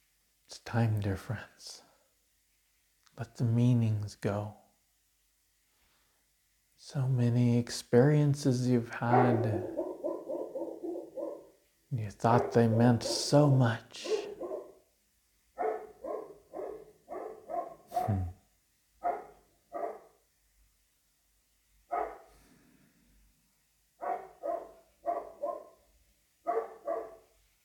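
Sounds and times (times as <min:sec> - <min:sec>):
speech: 0:00.5 - 0:01.8, 0:03.2 - 0:04.6, 0:06.8 - 0:09.8, 0:11.9 - 0:14.3, 0:18.1 - 0:18.4
dog barking: 0:09.0 - 0:11.6, 0:12.3 - 0:14.8, 0:15.6 - 0:18.3, 0:19.0 - 0:20.2, 0:21.9 - 0:22.3, 0:24.0 - 0:25.8, 0:26.4 - 0:27.3.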